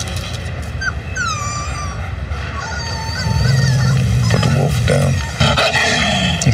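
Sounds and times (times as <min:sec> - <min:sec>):
steady noise: 0:00.0 - 0:06.5
young wolf whimpering and yipping: 0:00.7 - 0:05.4.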